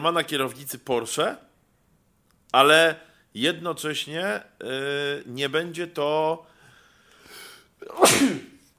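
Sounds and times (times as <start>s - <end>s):
speech: 0.0s - 1.5s, 2.5s - 6.5s, 7.3s - 8.5s
person sneezing: 7.3s - 8.7s.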